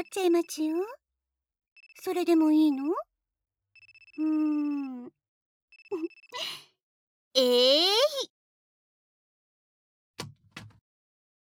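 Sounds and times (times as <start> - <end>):
speech: 0.0 - 1.0, 2.0 - 3.1, 4.2 - 5.2, 5.9 - 6.6, 7.4 - 8.4
smartphone ringtone trilling: 3.8 - 5.1, 5.7 - 6.4.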